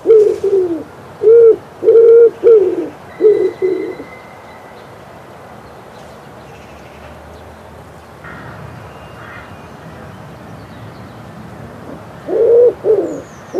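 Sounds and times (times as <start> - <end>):
common wood pigeon cooing: 0.0 - 4.1, 11.9 - 13.5.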